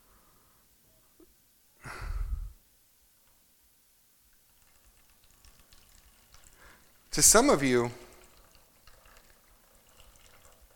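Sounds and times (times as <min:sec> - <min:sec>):
expensive bottled water pouring out of a bottle: 0:04.4 - 0:10.7
speech: 0:07.2 - 0:08.0.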